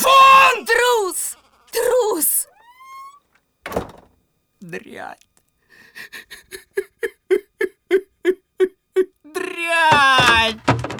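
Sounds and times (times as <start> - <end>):
person shouting: 0.0 - 2.6, 8.6 - 10.6
heavy door slamming: 2.6 - 4.2
speech: 4.7 - 5.3
laughter: 5.8 - 9.2.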